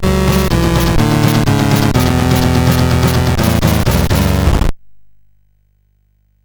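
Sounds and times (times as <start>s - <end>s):
chiptune music on a SID CSG8580R5 chip: 0.0s - 4.7s.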